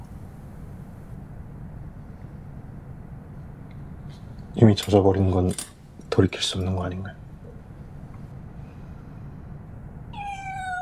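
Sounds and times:
quiet room hum: 0.0 - 10.8
speech: 4.2 - 7.2
baby kitten meowing: 10.2 - 10.8.

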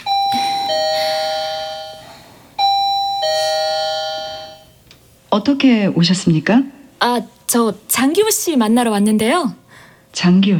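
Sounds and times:
electronic doorbell chiming two-tone ding-dong: 0.0 - 4.8
speech: 5.3 - 10.5.

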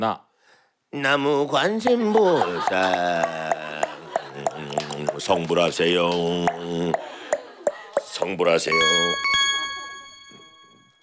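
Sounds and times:
speech: 0.0 - 0.2, 0.9 - 3.8, 5.2 - 7.1, 8.2 - 9.4
laughter: 1.9 - 10.1
bright ding-dong-dang chime marking a correct answer in a quiz game: 8.7 - 11.0.

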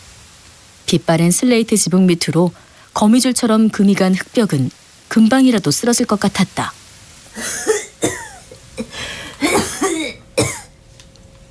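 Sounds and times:
speech: 0.9 - 6.8, 7.4 - 8.2
person coughing inside a house: 7.4 - 10.7.

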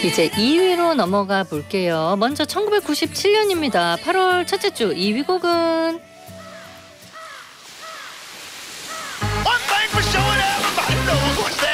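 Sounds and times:
speech: 0.0 - 6.1
ocean waves washing in: 7.6 - 11.7
song intro with pulsing bass notes and gliding synth or vocal tones: 9.2 - 11.7.

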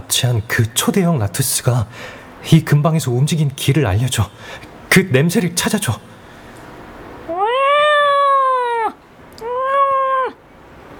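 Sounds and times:
speech: 0.1 - 6.1
large-bodied cat meowing: 7.3 - 10.4.

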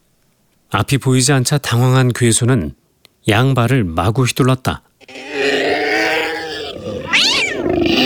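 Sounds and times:
speech: 0.7 - 5.3
several cats yowling and caterwauling: 5.0 - 8.0.

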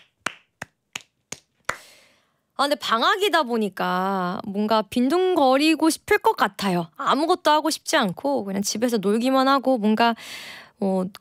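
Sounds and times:
hand claps: 0.0 - 1.9
speech: 2.6 - 11.1.

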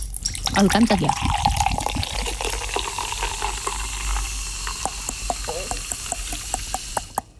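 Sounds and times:
sparkling water pouring: 0.0 - 7.1
bubbles popping: 0.1 - 7.3
speech: 0.6 - 1.4
bottle cracking open: 4.7 - 7.3.

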